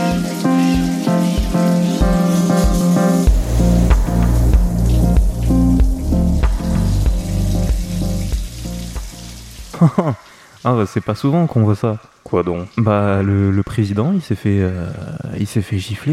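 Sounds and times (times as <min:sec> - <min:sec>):
shower water running as someone takes a shower: 0:00.0 - 0:14.4
rhythmic musical tune with a thumping bass: 0:00.8 - 0:09.4
speech: 0:09.8 - 0:16.1.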